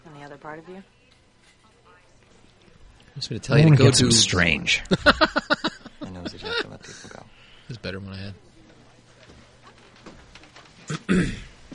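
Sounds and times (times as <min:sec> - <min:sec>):
speech: 0:00.4 - 0:01.0, 0:03.2 - 0:05.6, 0:06.2 - 0:08.5, 0:11.0 - 0:11.4
laughter: 0:04.8 - 0:07.3
throat clearing into microphone: 0:10.9 - 0:11.5.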